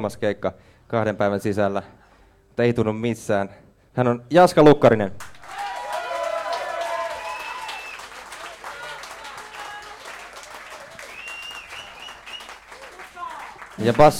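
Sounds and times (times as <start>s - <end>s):
speech: 0.0s - 2.0s, 2.6s - 5.2s, 13.8s - 14.1s
crowd applauding for a band member: 5.2s - 14.1s
cheering voices: 5.4s - 13.7s
whistles: 7.0s - 8.2s, 10.9s - 12.8s.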